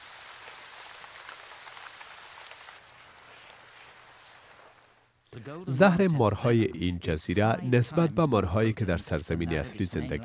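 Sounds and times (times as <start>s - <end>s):
steady rain falling: 0.0s - 5.1s
speech: 5.4s - 10.2s.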